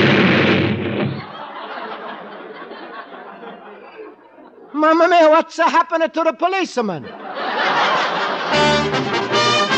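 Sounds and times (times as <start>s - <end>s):
firecrackers exploding: 0.0s - 1.3s
laughter: 1.0s - 5.3s, 6.8s - 9.6s
speech: 4.8s - 9.1s.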